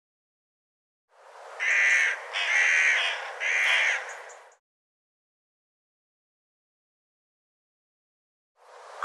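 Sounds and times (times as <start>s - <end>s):
bird calling with rough grating caws: 1.6s - 4.5s.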